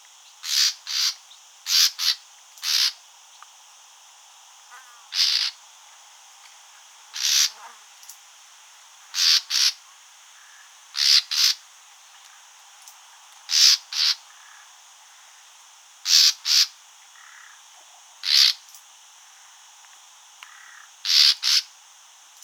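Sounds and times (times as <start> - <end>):
common nightingale harsh calls: 0.2 - 3.0, 5.1 - 5.6, 7.1 - 7.6, 9.1 - 9.8, 10.4 - 11.6, 13.5 - 14.6, 16.0 - 17.6, 18.2 - 18.7, 20.5 - 21.7.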